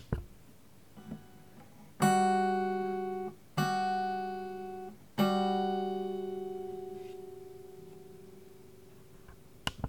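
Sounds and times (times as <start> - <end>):
guitar intervals: 0.0 - 9.8.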